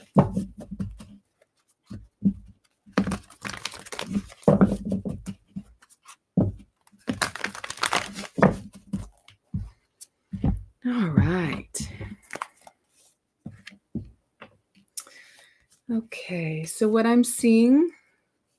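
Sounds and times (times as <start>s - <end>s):
soft taps and rustles of a card deck being handled: 0.0s - 14.9s
oracle card deck riffling: 3.0s - 4.5s, 7.0s - 8.6s, 12.2s - 12.7s
speech: 16.0s - 18.0s.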